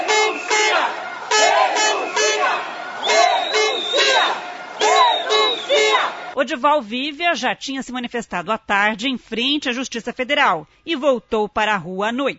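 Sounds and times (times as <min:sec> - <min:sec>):
large protest crowd chanting slogans in unison: 0:00.0 - 0:06.4
speech: 0:06.4 - 0:12.3.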